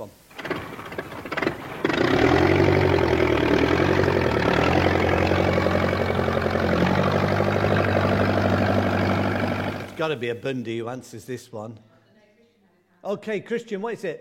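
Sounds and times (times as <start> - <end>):
tractor diesel engine cranking and idling: 0.1 - 10.2
speech: 10.0 - 11.9, 13.0 - 14.2.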